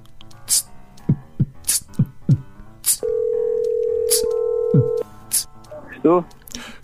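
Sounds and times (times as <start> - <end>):
rhythmic backing beat with thumping bass hits and crisp percussion: 0.5 - 2.5
phone line ringback tone: 3.0 - 5.0
speech: 6.0 - 6.4.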